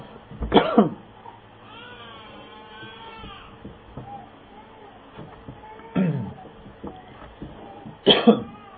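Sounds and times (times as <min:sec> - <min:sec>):
person coughing to clear a blocked throat: 0:00.5 - 0:01.0, 0:05.9 - 0:06.4, 0:08.0 - 0:08.6.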